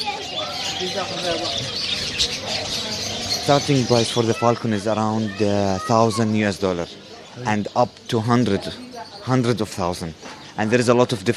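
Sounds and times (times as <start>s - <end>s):
bird used to train falcons chirping and cooing: 0.0s - 11.3s
market-like noise: 0.0s - 11.3s
murmuring voices in a market-like background: 0.0s - 11.3s
speech: 0.8s - 11.3s.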